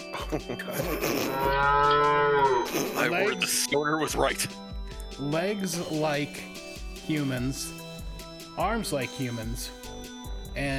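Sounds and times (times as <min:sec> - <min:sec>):
speech: 0:00.3 - 0:07.8, 0:08.6 - 0:09.9, 0:10.6 - 0:10.7
loud bovine moo from upright cow-headed creatures: 0:01.3 - 0:02.9.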